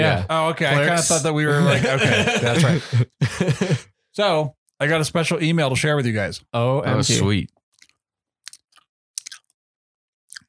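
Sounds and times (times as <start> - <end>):
speech: 0.0 - 7.6
laughter: 0.9 - 3.9
crunchy chewing: 7.7 - 9.6.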